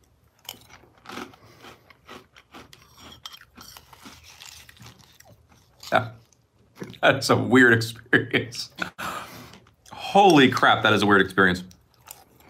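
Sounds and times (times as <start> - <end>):
chewing crunchy cinnamon cereal: 0.0 - 7.0, 11.6 - 12.4
speech: 5.9 - 6.2, 7.0 - 8.8, 10.1 - 11.7.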